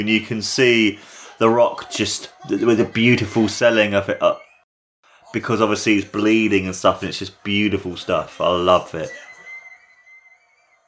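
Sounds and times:
speech: 0.0 - 4.4, 5.3 - 9.2
wrestling crowd whistling: 7.4 - 10.8.

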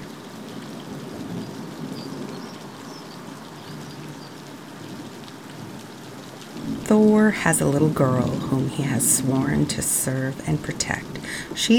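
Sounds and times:
heavy downpour spattering on surfaces: 0.0 - 11.7
rain runoff trickling: 2.4 - 11.7
speech: 6.9 - 11.7.

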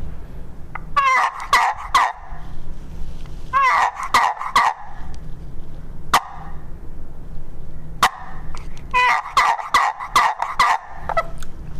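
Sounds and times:
low hum: 0.0 - 11.7
gobbler yelps from a handheld turkey call: 1.0 - 2.3, 3.5 - 5.0, 6.1 - 6.6, 8.0 - 8.4, 9.0 - 11.3.

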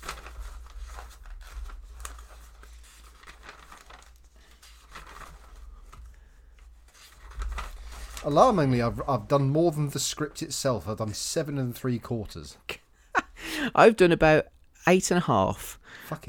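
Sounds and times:
paper sheets rustling: 0.0 - 10.6
speech: 8.2 - 12.7, 13.6 - 16.2.

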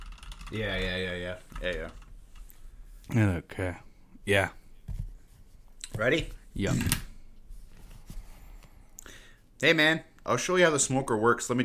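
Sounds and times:
computer keyboard clicking: 0.0 - 1.0
speech: 0.5 - 2.0, 3.1 - 4.6, 5.9 - 7.1, 9.6 - 11.6.

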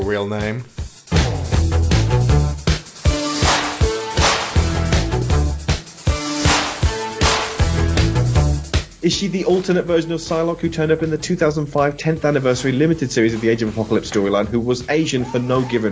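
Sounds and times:
speech: 0.1 - 0.8, 9.0 - 15.9
1980 new wave track with driving bass and synths: 1.0 - 9.2
sharp whip cracks: 3.4 - 4.6.

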